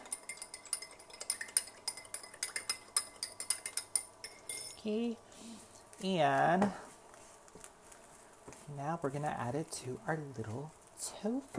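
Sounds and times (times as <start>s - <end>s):
spoon mixing soy sauce into a dish: 0.0s - 4.8s
speech: 4.8s - 6.9s, 8.7s - 11.5s.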